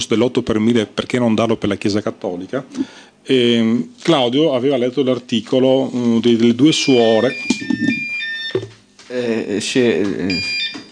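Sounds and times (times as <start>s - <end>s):
speech: 0.0s - 8.0s, 9.1s - 10.6s
mobile phone ringing with bright electronic tones: 6.7s - 8.8s, 10.3s - 10.9s.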